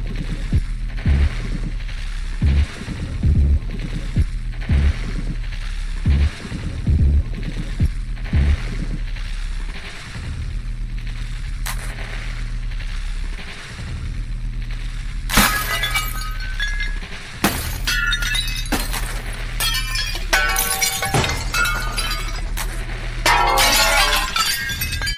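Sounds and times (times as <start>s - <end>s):
low droning rumble: 0.0s - 25.1s
phone screen glass cracking and shattering: 15.3s - 25.1s.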